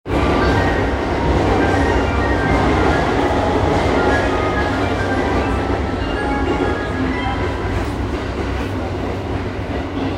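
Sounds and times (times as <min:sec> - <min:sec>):
JR Yamanote Line train sounds at Okachimachi: 0:00.0 - 0:10.1.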